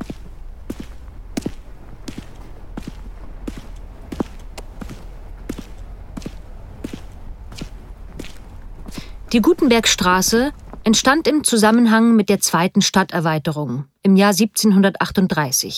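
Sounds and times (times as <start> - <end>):
footsteps walking across a street: 0.0 - 11.6
low rumble: 0.0 - 12.3
speech: 9.3 - 15.7.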